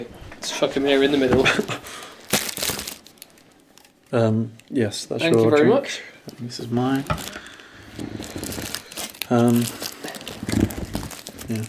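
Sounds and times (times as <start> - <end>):
speech: 0.0 - 2.0, 4.1 - 7.4, 9.3 - 9.9
chocolate wrapper rustling while eating chocolate: 2.2 - 4.2, 6.8 - 11.6.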